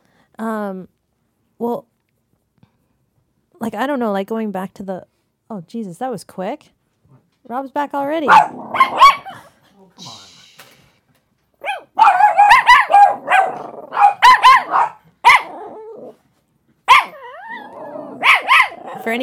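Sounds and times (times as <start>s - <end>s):
speech: 0.4s - 1.0s, 1.6s - 1.9s, 3.6s - 6.8s, 7.4s - 9.2s
several dogs barking in a room: 8.3s - 9.4s, 11.6s - 15.7s, 16.8s - 19.1s.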